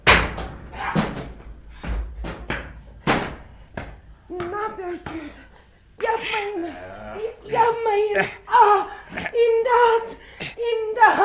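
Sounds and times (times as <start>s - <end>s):
door being forced in with heavy blows: 0.0s - 3.6s
speech: 4.4s - 5.5s, 6.1s - 11.2s
laughter: 6.4s - 11.2s.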